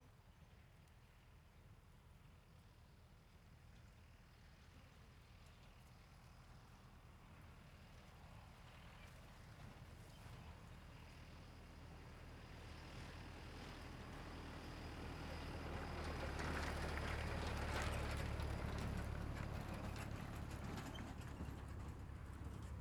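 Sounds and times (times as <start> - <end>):
truck passing by from the right: 12.5 - 22.8.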